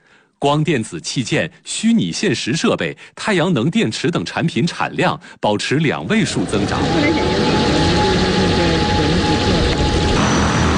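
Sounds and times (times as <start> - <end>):
speech: 0.4 - 7.7
V50P Great White Shark cargo drone taking off in Zhoushan China: 6.1 - 10.7.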